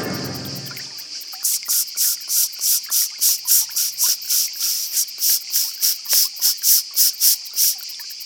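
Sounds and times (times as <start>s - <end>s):
cicadas chirping: 0.8s - 8.2s.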